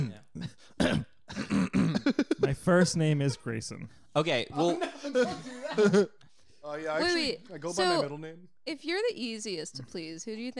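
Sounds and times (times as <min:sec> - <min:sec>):
throat-clearing grunts: 0:00.0 - 0:02.2
person coughing: 0:00.0 - 0:02.5
speech: 0:00.4 - 0:01.1, 0:02.6 - 0:10.5
laughter: 0:04.6 - 0:06.2.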